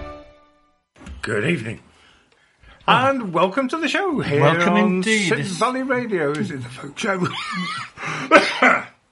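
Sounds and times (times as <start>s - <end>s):
speech: 1.3s - 1.9s, 2.9s - 8.9s
person coughing raspily: 8.2s - 9.0s.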